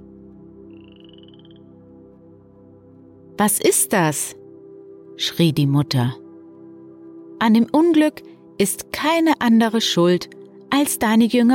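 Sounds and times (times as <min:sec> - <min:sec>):
chorus of toads croaking: 0:00.6 - 0:02.0
speech: 0:03.4 - 0:04.4, 0:05.2 - 0:06.2, 0:07.4 - 0:11.5.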